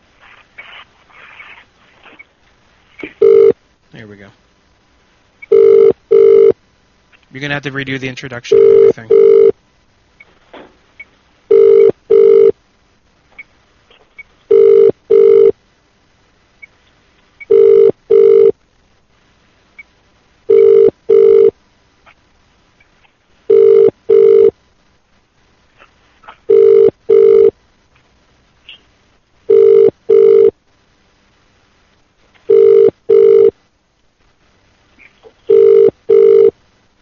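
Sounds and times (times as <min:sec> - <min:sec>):
telephone ringback tone: 0:03.2 - 0:03.6, 0:05.5 - 0:06.6, 0:08.5 - 0:09.5, 0:11.5 - 0:12.5, 0:14.5 - 0:15.5, 0:17.5 - 0:18.5, 0:20.5 - 0:21.5, 0:23.5 - 0:24.5, 0:26.5 - 0:27.5, 0:29.5 - 0:30.5, 0:32.5 - 0:33.5, 0:35.5 - 0:36.5
speech: 0:04.0 - 0:04.5, 0:07.3 - 0:09.6.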